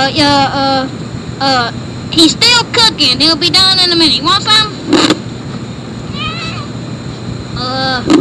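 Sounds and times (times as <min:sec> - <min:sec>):
speech: 0:00.0 - 0:05.2, 0:07.6 - 0:08.1
cat meowing: 0:06.1 - 0:06.7.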